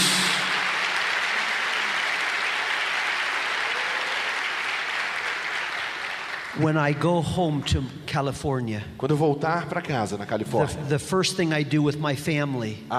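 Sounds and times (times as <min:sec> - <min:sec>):
large audience applauding loudly: 0:00.0 - 0:07.1
speech: 0:06.6 - 0:12.9.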